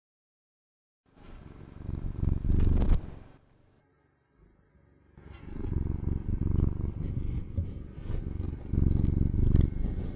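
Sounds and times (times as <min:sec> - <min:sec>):
tabby cat purring: 0:01.4 - 0:03.2, 0:05.2 - 0:10.1.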